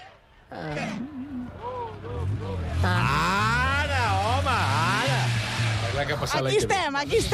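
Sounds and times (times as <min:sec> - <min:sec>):
voices making drawn-out vocal sounds: 0:00.4 - 0:06.0
speech: 0:00.5 - 0:01.4, 0:06.0 - 0:07.3
car engine idling: 0:01.2 - 0:07.3.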